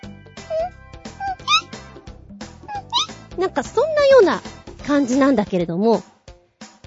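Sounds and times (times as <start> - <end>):
voice imitating a frog's high whistle-like electronic call: 0.5 - 1.7, 2.7 - 3.1
speech: 3.4 - 6.1.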